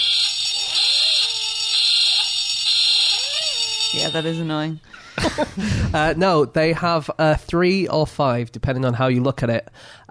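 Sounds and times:
buzzer sounding for a wrong answer: 0:00.0 - 0:04.8
speech: 0:03.9 - 0:10.1
laughter: 0:05.0 - 0:06.0.

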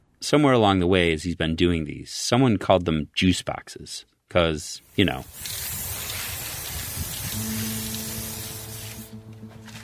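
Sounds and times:
speech: 0:00.3 - 0:05.8
aerosol spray paint can spraying on a city utility box: 0:04.8 - 0:09.3.

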